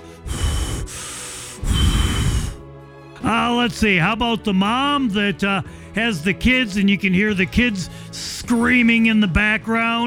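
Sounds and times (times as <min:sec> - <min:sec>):
person imitating heavy breathing of an old person on a phone call: 0:00.0 - 0:02.6
speech: 0:03.2 - 0:10.0.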